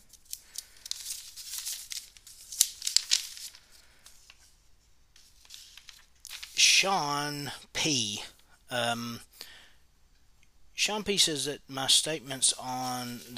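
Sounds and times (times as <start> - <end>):
sheet of paper rustling and crinkling: 0.0 - 6.6, 12.6 - 13.3
speech: 6.8 - 9.3, 10.8 - 13.3.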